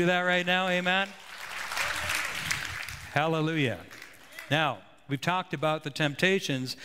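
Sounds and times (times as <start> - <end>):
speech: 0.0 - 1.3, 3.1 - 6.8
crowd applauding: 0.3 - 4.6.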